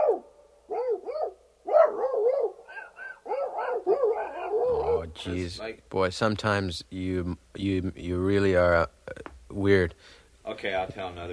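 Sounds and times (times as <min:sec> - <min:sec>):
person imitating a dogfight with barks, yips and growly yelps: 0:00.0 - 0:05.3
speech: 0:05.2 - 0:11.3.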